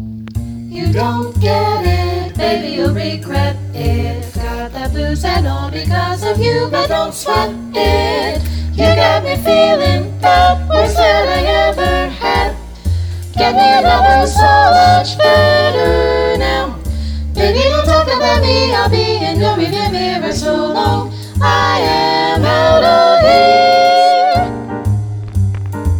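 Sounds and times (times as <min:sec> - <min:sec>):
B flat vocal jazz etude without tenor: 0:00.3 - 0:25.8.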